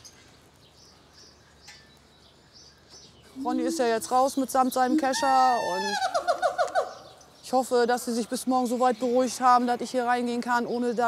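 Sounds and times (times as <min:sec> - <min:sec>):
steady hiss: 0:00.0 - 0:09.2
wary birds chirping in an enclosure: 0:00.0 - 0:11.0
short high bird calls: 0:03.2 - 0:07.3
speech: 0:03.4 - 0:06.2, 0:07.5 - 0:11.0.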